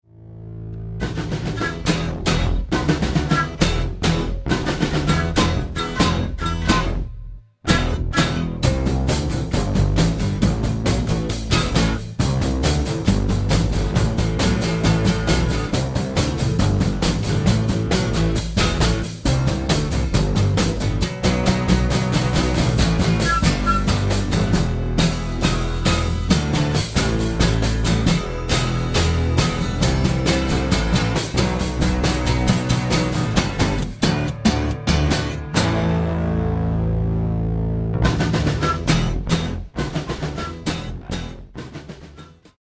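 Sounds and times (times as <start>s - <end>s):
bass: 0.0s - 42.5s
drums: 1.0s - 36.9s, 37.9s - 42.5s
flutes: 2.8s - 3.8s, 5.0s - 7.1s, 23.0s - 24.7s, 38.5s - 39.1s.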